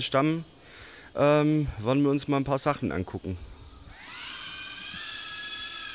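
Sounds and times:
speech: 0.0s - 0.6s, 1.2s - 3.6s
small FPV drone motors spinning up: 3.6s - 5.9s.

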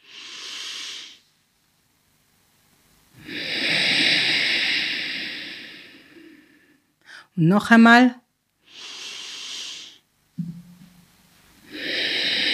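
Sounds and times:
breathing through the nose: 0.0s - 1.3s, 3.2s - 7.3s, 8.6s - 10.1s, 11.6s - 12.5s
speech: 7.4s - 8.2s.

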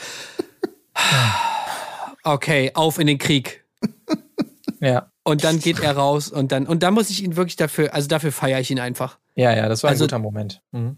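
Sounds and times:
voice imitating a deep huffing breath: 0.0s - 2.2s
speech: 1.1s - 1.4s, 2.2s - 3.6s, 4.8s - 10.9s.

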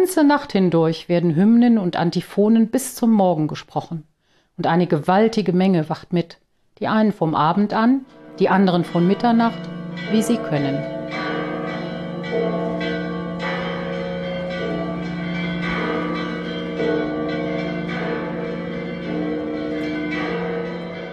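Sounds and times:
speech: 0.0s - 11.2s
church bells pealing in a full carillon: 8.0s - 21.1s.

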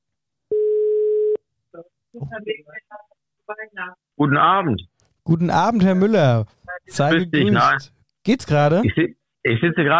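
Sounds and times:
ringback tone of an outgoing phone call: 0.5s - 1.4s
speech: 2.1s - 9.9s.

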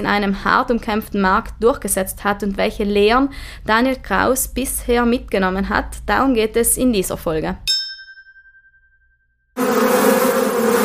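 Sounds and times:
speech: 0.0s - 7.7s
bright metallic ding: 7.7s - 9.0s
bees buzzing in a beehive: 9.6s - 10.8s.

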